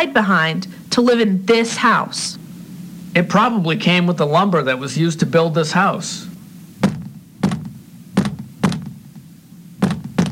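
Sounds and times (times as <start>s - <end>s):
speech: 0.0s - 2.4s, 3.1s - 6.3s
dull knocking on a wall: 6.8s - 10.2s.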